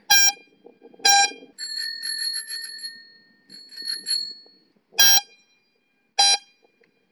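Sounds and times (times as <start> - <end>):
bicycle air horn: 0.1 - 1.4, 5.0 - 5.4, 6.2 - 6.6.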